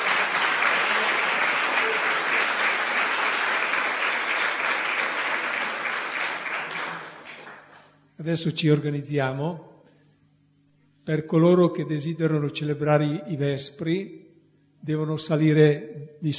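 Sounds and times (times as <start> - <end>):
audience applause: 0.0 - 7.9
speech: 8.2 - 9.7, 11.1 - 14.2, 14.8 - 16.3.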